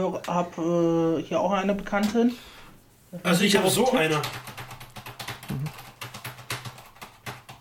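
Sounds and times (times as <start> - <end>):
speech: 0.0 - 4.6
typing on a non-mechanical keyboard held on the lap: 4.2 - 7.5.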